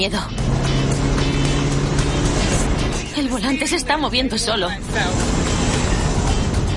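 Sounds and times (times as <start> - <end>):
speech: 0.0 - 0.6, 3.2 - 5.6
engine and road noise from a self-driving car moving fast: 0.0 - 6.7.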